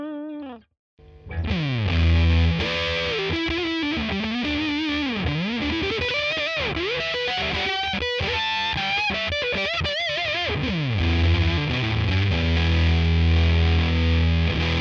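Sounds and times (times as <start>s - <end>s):
Walrus Fundamental fuzz classic lead tone: 1.0s - 14.8s.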